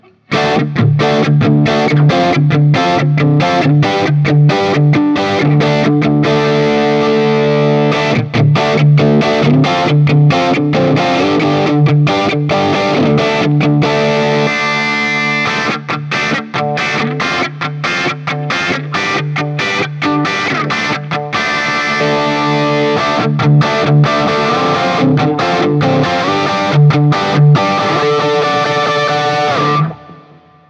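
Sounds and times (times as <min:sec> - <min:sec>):
acoustic-electric guitar through amp modeler and PA speaker: 0:00.0 - 0:30.6.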